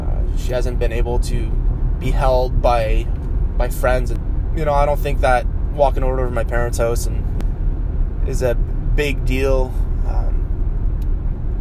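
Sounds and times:
car engine and tire drone heard from inside the cabin: 0.0s - 11.5s
speech: 0.5s - 7.3s, 8.2s - 10.3s.

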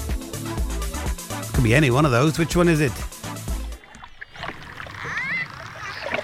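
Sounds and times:
speech: 1.6s - 3.1s
water splashing: 3.2s - 6.2s
dolphin whistling: 3.6s - 6.2s.

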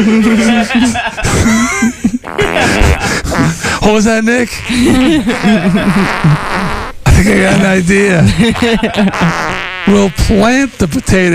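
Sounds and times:
laughter: 0.0s - 3.2s, 4.7s - 6.4s, 7.2s - 9.6s
speech: 0.0s - 11.3s
long loud fart sound effect: 2.2s - 3.6s, 4.6s - 7.4s, 8.9s - 11.3s.

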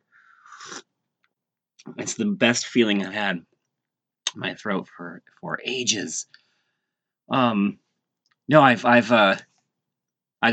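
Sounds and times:
slurp of someone sipping hot cider: 0.4s - 0.9s
speech: 1.9s - 3.5s, 4.4s - 6.4s, 7.3s - 7.8s, 8.5s - 9.5s.

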